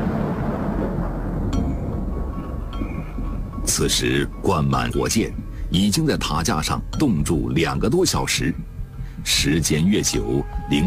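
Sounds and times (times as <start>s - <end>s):
rolling thunder: 0.0s - 6.2s
speech: 3.7s - 10.8s.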